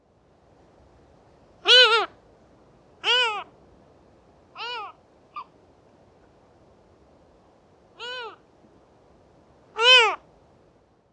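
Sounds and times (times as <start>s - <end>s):
Lesser Black-backed Gull Larus fuscus heuglini call: 1.7s - 2.1s, 3.0s - 3.5s, 8.0s - 8.4s, 9.8s - 10.2s.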